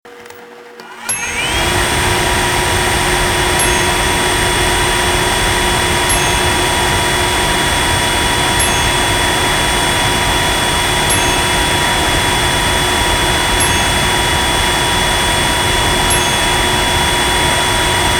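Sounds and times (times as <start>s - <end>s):
vacuum cleaner or shop vac running: 0.8s - 18.1s.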